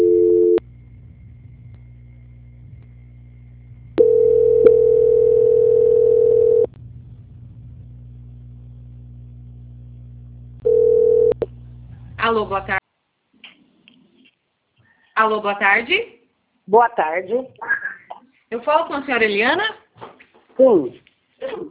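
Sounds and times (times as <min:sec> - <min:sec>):
telephone line tone during a bank call transfer: 0:00.0 - 0:00.6, 0:04.0 - 0:06.7, 0:10.6 - 0:11.5
low telephone line hum: 0:00.0 - 0:12.8
speech: 0:12.4 - 0:12.8, 0:15.2 - 0:17.7, 0:18.5 - 0:19.8, 0:20.6 - 0:21.0.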